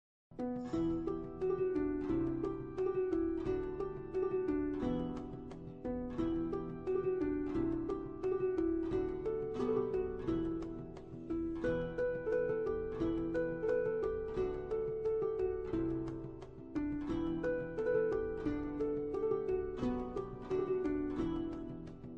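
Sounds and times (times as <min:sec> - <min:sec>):
medieval music from England: 0:00.3 - 0:22.1.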